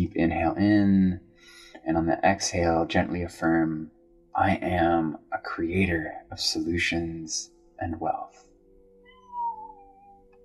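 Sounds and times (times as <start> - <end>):
speech: 0.2 - 8.4
cat meowing: 9.0 - 10.3.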